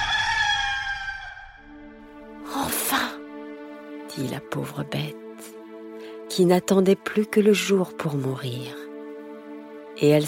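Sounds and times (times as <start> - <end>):
rooster crowing from a farmhouse at dawn: 0.0 - 1.8
speech: 4.2 - 5.2, 6.4 - 8.8, 10.0 - 10.2.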